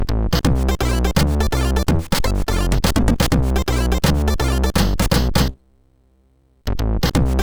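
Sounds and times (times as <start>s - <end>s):
MOS6581R2 SID chip music: 0.3s - 5.6s, 7.2s - 7.4s.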